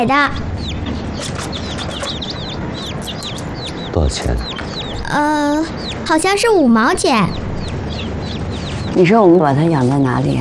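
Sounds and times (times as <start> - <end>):
speech: 0.0 - 0.5, 3.9 - 7.4, 9.0 - 10.4
baby chicks peeping: 0.0 - 10.4
low rumble: 0.0 - 10.4.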